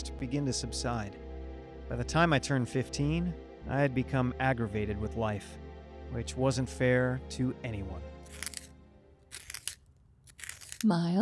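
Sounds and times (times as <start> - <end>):
speech: 0.2 - 1.2, 1.9 - 8.1, 10.8 - 11.2
pencil being sharpened: 8.2 - 8.7, 9.3 - 10.9.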